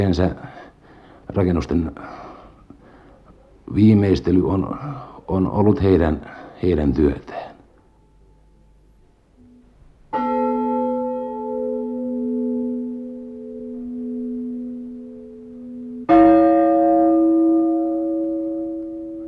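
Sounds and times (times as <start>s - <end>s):
speech: 0.0s - 0.5s, 1.3s - 2.2s, 3.7s - 7.5s
bronze church bell ringing: 10.1s - 19.2s.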